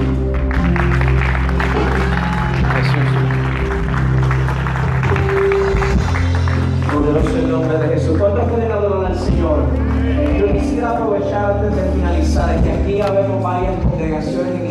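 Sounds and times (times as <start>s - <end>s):
crowd applauding: 0.0s - 11.5s
sustained music: 0.0s - 14.6s.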